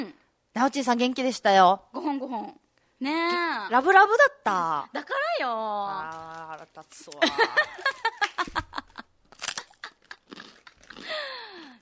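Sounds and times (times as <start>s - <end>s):
speech: 0.6s - 8.6s
Japanese rice crackers being bitten and chewed: 6.1s - 8.4s, 9.3s - 11.1s.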